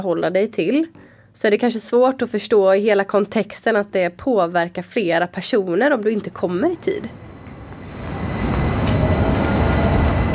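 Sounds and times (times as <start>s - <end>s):
speech: 0.0s - 7.3s
tram rumbling along its rails: 6.4s - 10.3s.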